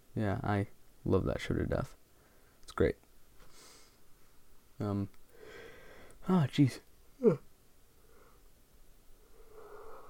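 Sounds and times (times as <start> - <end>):
speech: 0.2 - 2.0, 2.7 - 3.0, 4.8 - 5.2, 6.3 - 7.5
person yawning: 7.2 - 7.4.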